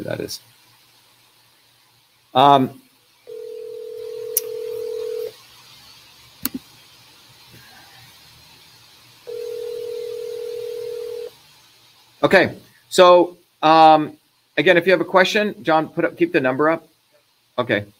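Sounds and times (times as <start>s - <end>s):
speech: 0.0s - 0.6s, 2.3s - 2.8s, 12.2s - 16.9s, 17.6s - 17.9s
telephone dial tone: 3.3s - 5.3s, 9.3s - 11.3s.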